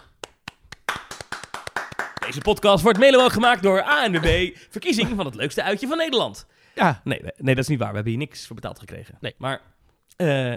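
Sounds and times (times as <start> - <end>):
one or two people clapping hands in applause: 0.0 - 5.2
speech: 2.3 - 10.5.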